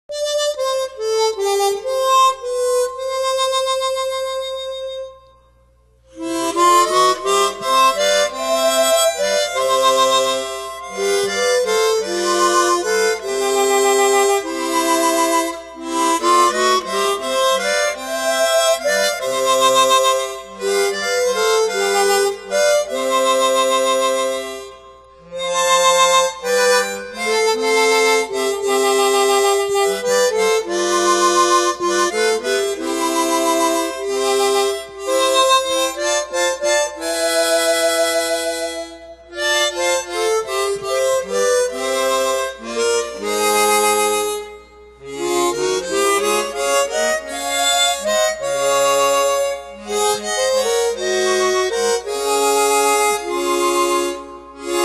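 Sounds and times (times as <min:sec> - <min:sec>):
hymns on chromatic harmonica: 0:00.1 - 0:54.8.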